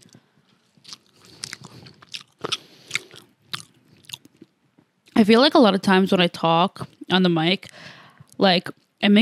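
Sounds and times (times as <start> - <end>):
wet chewing of a french fry: 0.0 - 5.2
speech: 5.2 - 9.2.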